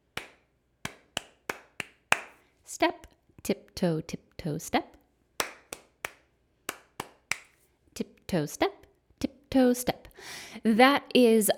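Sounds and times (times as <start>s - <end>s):
hands clapping a rhythmic pattern: 0.0s - 2.5s, 5.4s - 7.6s
speech: 2.7s - 5.0s, 8.0s - 11.5s.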